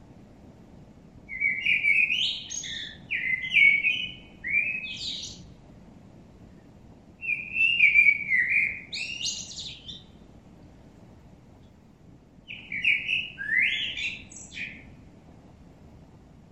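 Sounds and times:
common blackbird Turdus merula singing: 1.3s - 5.6s, 7.2s - 10.3s, 12.4s - 15.1s.

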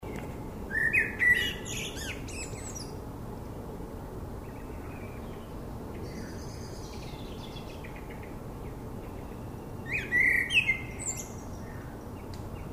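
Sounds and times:
Common blackbird Turdus merula fluty song with high twittering: 0.1s - 3.0s, 4.4s - 12.7s.

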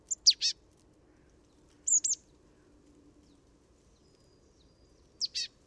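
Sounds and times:
marsh tit Poecile palustris calling: 0.1s - 0.5s, 1.9s - 2.2s, 5.2s - 5.5s.

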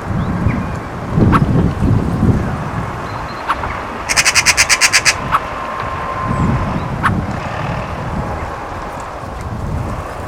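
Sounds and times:
low rumbling background noise: 0.0s - 10.2s
Eurasian magpie chattering in a fast harsh rattle: 3.4s - 5.5s.

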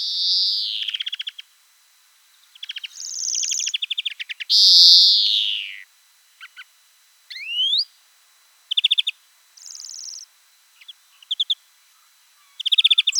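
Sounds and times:
European greenfinch Chloris chloris calls: 0.2s - 1.4s, 2.6s - 5.8s, 6.4s - 6.7s, 7.3s - 7.9s, 8.7s - 13.1s.

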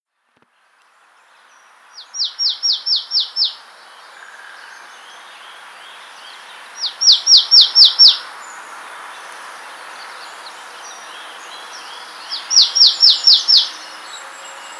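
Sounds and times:
faint bird twittering: 1.2s - 14.7s
marsh tit Poecile palustris calling: 2.0s - 3.7s, 6.3s - 8.3s, 10.9s - 14.7s.

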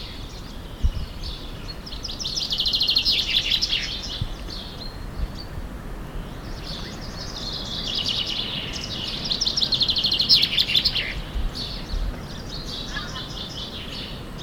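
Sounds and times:
common chaffinch Fringilla coelebs singing: 0.0s - 14.4s.

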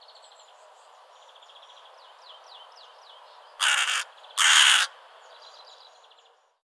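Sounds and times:
Carrion crow cawing: 3.6s - 5.0s.

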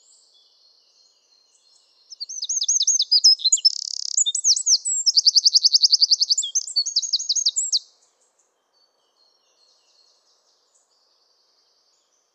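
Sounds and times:
Eurasian wren singing: 2.1s - 7.9s.

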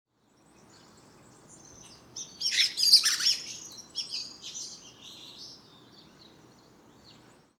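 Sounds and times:
quiet background hiss: 0.2s - 7.5s
common blackbird Turdus merula harsh chattering call: 2.2s - 5.4s.

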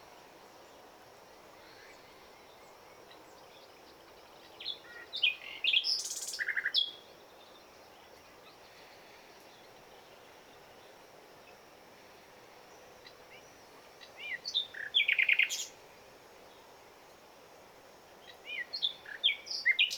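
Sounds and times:
common nightingale Luscinia megarhynchos singing: 1.6s - 8.7s, 13.0s - 15.8s, 18.2s - 19.9s.

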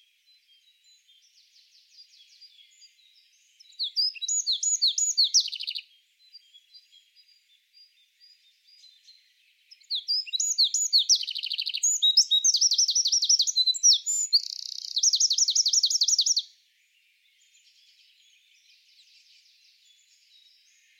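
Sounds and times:
Eurasian wren Troglodytes troglodytes singing tumbling notes and trills: 0.0s - 20.9s.

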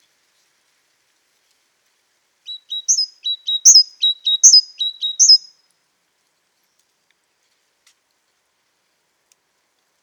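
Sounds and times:
great tit singing two-note phrases: 2.5s - 5.5s.

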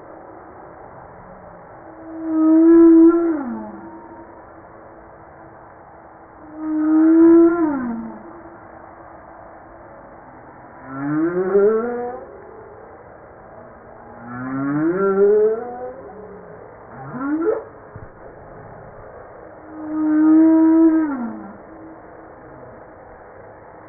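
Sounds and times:
humpback whale song with low moaning tones and rising harmonic swoops: 1.7s - 4.7s, 6.4s - 9.6s, 10.6s - 12.3s, 14.1s - 23.4s.

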